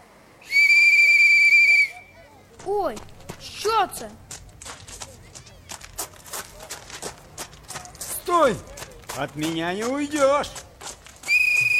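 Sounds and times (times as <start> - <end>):
loud shrill whistle: 0.4 - 2.2, 11.2 - 11.7
faint murmuring background: 1.9 - 9.1
speech: 2.6 - 4.3, 8.3 - 10.6.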